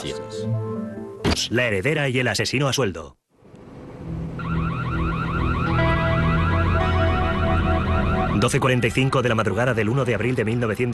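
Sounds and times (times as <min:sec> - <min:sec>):
speech: 0:00.0 - 0:00.7, 0:01.4 - 0:03.2, 0:08.4 - 0:10.9
burglar alarm warbling: 0:04.4 - 0:09.2.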